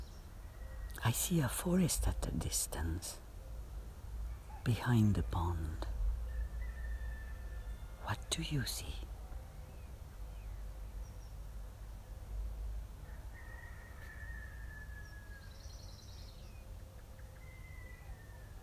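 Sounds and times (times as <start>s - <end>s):
low steady rumble: 0.0s - 13.1s
birds singing outdoors: 0.0s - 18.6s
speech: 1.0s - 3.2s, 4.6s - 5.9s, 8.1s - 9.1s.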